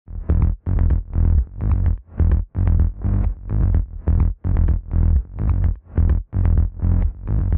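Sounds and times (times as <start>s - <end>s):
sub bass layered with compressed bass: 0.1s - 7.5s.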